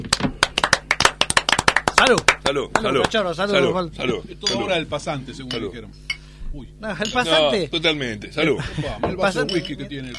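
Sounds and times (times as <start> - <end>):
small group clapping: 0.0 - 3.2
speech: 2.1 - 10.1.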